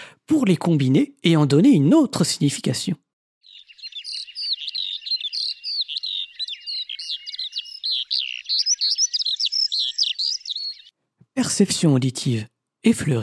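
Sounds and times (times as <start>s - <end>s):
speech: 0.3s - 3.1s, 11.6s - 13.2s
Eurasian skylark singing: 3.4s - 10.9s.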